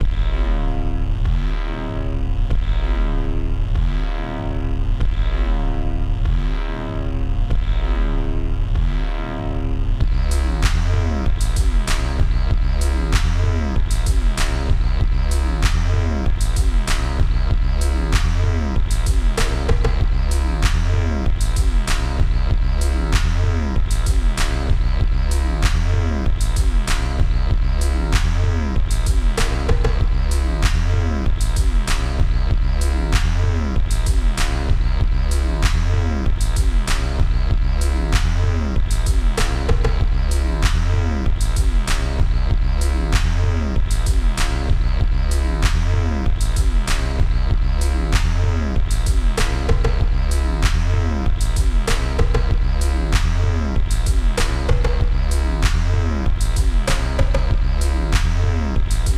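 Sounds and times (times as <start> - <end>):
hum: 0.0 - 59.1
drum line playing: 10.1 - 22.4, 28.2 - 32.4, 38.2 - 42.4, 43.2 - 59.1.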